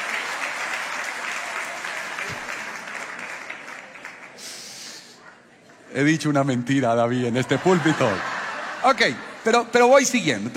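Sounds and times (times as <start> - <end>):
audience applause: 0.0 - 5.0
speech: 6.0 - 10.5
laughter: 7.3 - 9.8.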